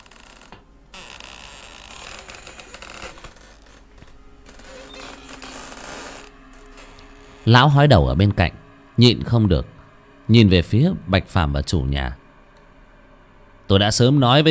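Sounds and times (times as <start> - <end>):
old door creaking open in an old room: 0.0 - 7.8
speech: 7.4 - 12.2, 13.7 - 14.4.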